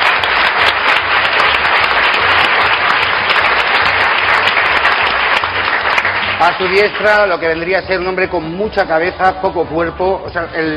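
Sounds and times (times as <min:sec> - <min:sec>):
audience applause on a comedy panel show: 0:00.0 - 0:07.6
speech: 0:06.4 - 0:10.7.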